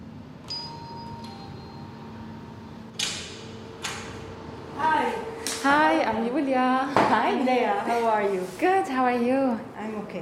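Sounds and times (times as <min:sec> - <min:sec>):
low hum: 0:00.0 - 0:10.2
doorbell chime tones at the entrance of a gallery: 0:00.5 - 0:02.7
speech: 0:05.6 - 0:10.2.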